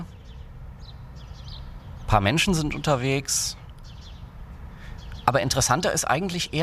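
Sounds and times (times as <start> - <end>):
distant street traffic rumble: 0.0 - 6.6
faint high bird chirps and song phrases: 0.0 - 6.6
speech: 2.1 - 3.6, 5.3 - 6.6.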